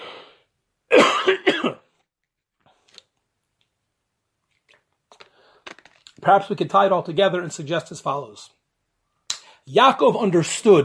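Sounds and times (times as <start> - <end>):
person coughing: 0.9 - 2.0
speech: 1.2 - 1.8, 6.3 - 8.6, 9.7 - 10.8.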